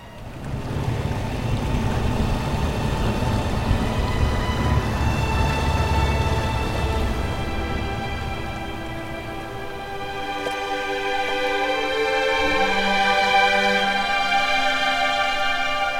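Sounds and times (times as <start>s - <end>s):
motorboat engine running at night: 0.0s - 11.7s
water noise: 0.0s - 15.9s.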